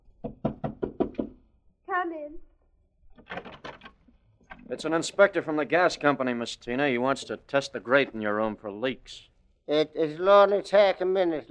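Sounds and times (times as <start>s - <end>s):
firm knocks on a door: 0.2s - 1.4s
speech: 2.0s - 2.5s, 4.7s - 11.4s.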